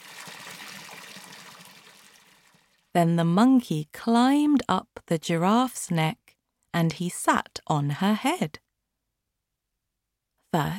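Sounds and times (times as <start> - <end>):
water poured into a pelican's beak: 0.0 - 2.9
speech: 2.9 - 8.6, 10.5 - 10.7.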